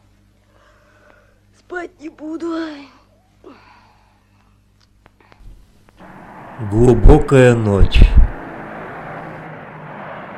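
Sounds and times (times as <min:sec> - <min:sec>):
speech: 0:01.7 - 0:03.7, 0:06.6 - 0:08.3
airplane coming in to land at an airport: 0:06.0 - 0:10.3.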